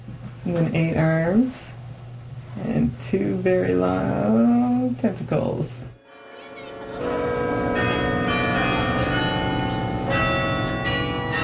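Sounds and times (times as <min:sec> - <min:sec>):
speech: 0:00.5 - 0:01.7, 0:02.6 - 0:05.8
large campus bells ringing in a peal: 0:06.0 - 0:11.4.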